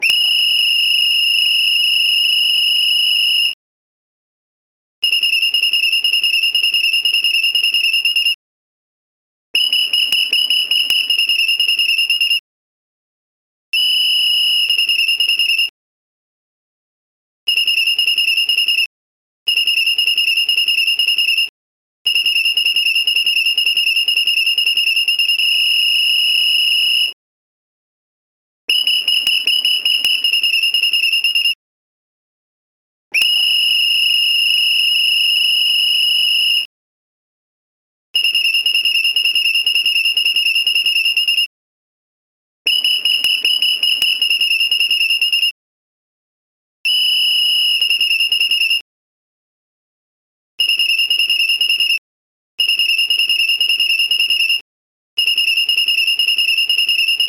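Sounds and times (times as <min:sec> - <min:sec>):
whistle: 0:00.0 - 0:03.6, 0:05.0 - 0:08.4, 0:09.6 - 0:12.4, 0:13.7 - 0:15.8, 0:17.5 - 0:18.9, 0:19.5 - 0:21.5, 0:22.1 - 0:27.2, 0:28.7 - 0:31.6, 0:33.1 - 0:36.7, 0:38.2 - 0:41.5, 0:42.7 - 0:45.6, 0:46.8 - 0:48.9, 0:50.6 - 0:52.0, 0:52.6 - 0:54.6, 0:55.2 - 0:57.2.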